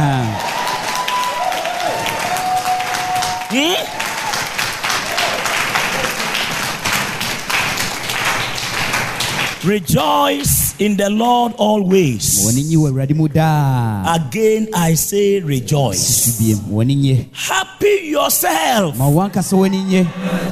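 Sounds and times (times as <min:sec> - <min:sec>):
large church audience clapping: 0:00.0 - 0:11.0
speech: 0:03.5 - 0:04.0, 0:09.6 - 0:20.5.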